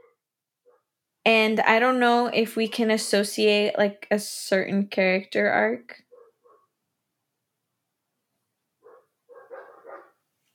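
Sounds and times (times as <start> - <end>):
dogs barking at home: 0.0 - 0.8, 6.1 - 6.7, 8.8 - 10.2
speech: 1.2 - 6.0.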